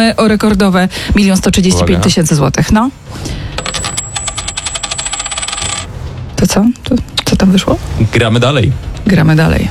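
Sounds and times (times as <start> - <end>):
speech: 0.0 - 3.4, 6.4 - 9.6
metal coin tossed in a game show rattling and clinking: 3.6 - 6.0.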